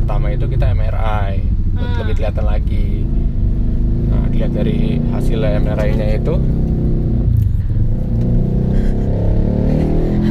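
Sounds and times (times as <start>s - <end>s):
motorcycle engine rumbling with slight revving: 0.0s - 10.2s
speech: 1.9s - 3.4s, 4.4s - 6.7s.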